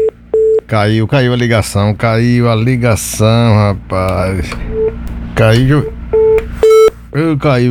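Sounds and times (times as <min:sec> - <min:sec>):
faint telephone line hum: 0:00.0 - 0:07.4
speech: 0:00.7 - 0:06.0, 0:07.1 - 0:07.6
telephone ringback tone beeps on a call-in line: 0:05.8 - 0:06.9.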